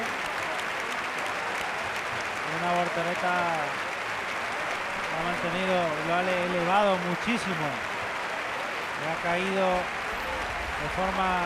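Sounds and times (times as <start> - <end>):
large outdoor crowd in a bullring applauding a departing bullfighter: 0.0 - 11.4
speech: 2.6 - 3.9, 5.2 - 7.9, 9.0 - 10.0, 10.8 - 11.4.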